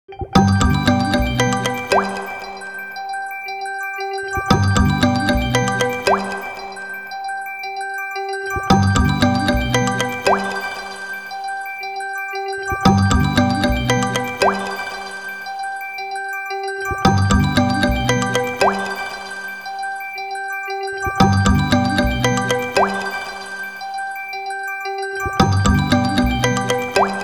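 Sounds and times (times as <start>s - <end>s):
group incoming ringtone: 0.3s - 27.2s.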